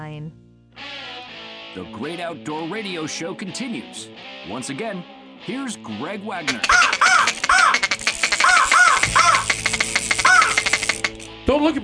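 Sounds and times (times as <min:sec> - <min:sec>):
speech: 0:01.7 - 0:07.1, 0:11.5 - 0:11.8
person imitating American crow cawing: 0:06.5 - 0:11.2.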